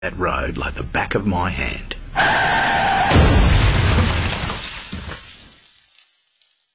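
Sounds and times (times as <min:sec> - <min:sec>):
speech: 0:00.0 - 0:03.4
glass shattering with tinkling shards: 0:03.1 - 0:06.7.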